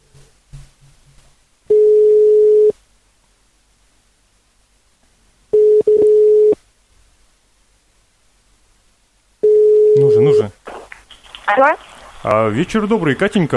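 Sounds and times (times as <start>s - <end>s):
telephone ringback tone during outgoing call: 1.7s - 2.7s, 5.6s - 6.6s, 9.4s - 10.4s
speech: 11.5s - 13.5s.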